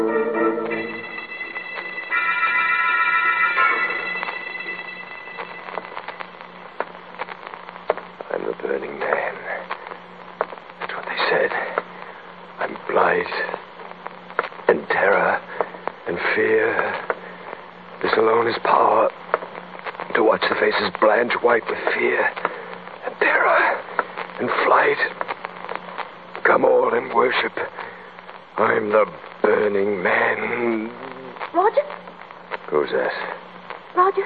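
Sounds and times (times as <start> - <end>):
brief steady tone: 0.2 - 7.8
crackling hissing static over a telephone line: 0.5 - 34.2
faint garbled voice fragments: 30.3 - 31.8.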